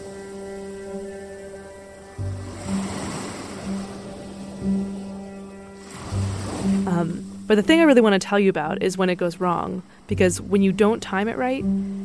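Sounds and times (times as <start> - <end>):
ocean surf waves breaking: 0.0 - 7.9
speech: 7.5 - 12.0.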